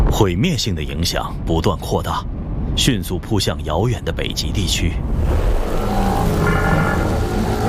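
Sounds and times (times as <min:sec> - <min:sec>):
speech: 0:00.2 - 0:05.6
asteroid impact explosion rumbling roar: 0:05.1 - 0:07.6.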